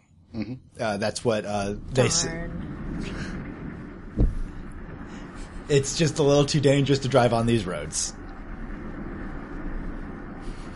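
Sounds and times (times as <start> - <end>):
speech: 0.4 - 3.3, 5.7 - 8.2
train passing on nearby tracks: 1.4 - 10.7.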